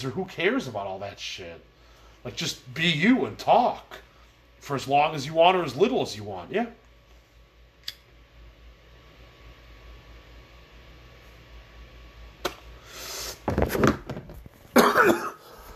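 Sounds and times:
speech: 0:00.0 - 0:06.8
quiet hum: 0:00.0 - 0:15.7
harsh raspy coughing after smoking weed: 0:14.8 - 0:15.7.

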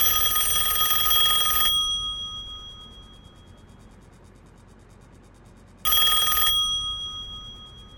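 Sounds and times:
old-fashioned telephone bell ringing: 0:00.0 - 0:03.6, 0:05.9 - 0:07.9.

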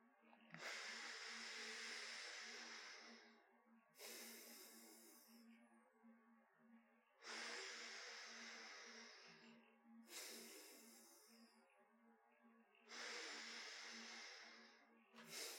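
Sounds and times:
breathing in through one nostril: 0:00.5 - 0:05.4, 0:07.2 - 0:11.6, 0:12.9 - 0:15.5.

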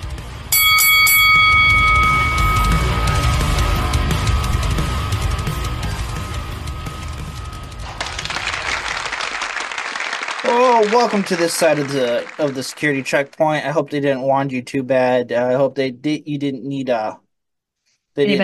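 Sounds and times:
wrestling ring bell clanging in rapid repeated strikes: 0:00.5 - 0:09.1
loud cheering crowd: 0:01.9 - 0:13.2
applause: 0:07.8 - 0:13.2
speech: 0:10.9 - 0:17.2, 0:18.2 - 0:18.4.

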